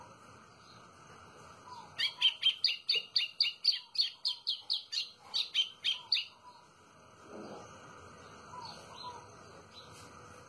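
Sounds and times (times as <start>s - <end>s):
White-throated seedeater song of high clipped chirps: 1.6s - 6.8s, 7.4s - 10.0s.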